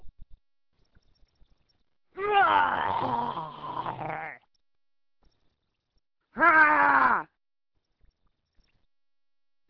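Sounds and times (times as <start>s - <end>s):
voice imitating a guttural goblin roar: 2.2s - 4.4s, 6.4s - 7.3s.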